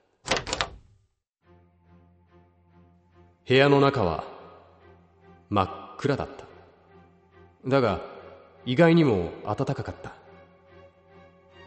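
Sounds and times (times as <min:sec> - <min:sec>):
door latch clunks of an apartment door in an old apartment building: 0:00.2 - 0:01.0
speech: 0:03.5 - 0:04.3, 0:05.5 - 0:06.5, 0:07.6 - 0:10.2.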